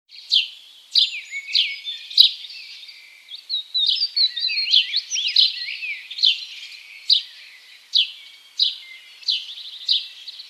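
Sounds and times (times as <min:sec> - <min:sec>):
house sparrow Passer domesticus chirping: 0:00.1 - 0:10.4.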